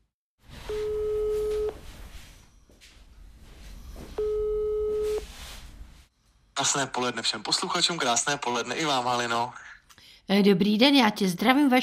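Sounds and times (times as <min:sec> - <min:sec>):
telephone call tone while dialling out: 0:00.6 - 0:01.8, 0:04.2 - 0:05.3
speech: 0:06.6 - 0:09.7, 0:10.3 - 0:11.8.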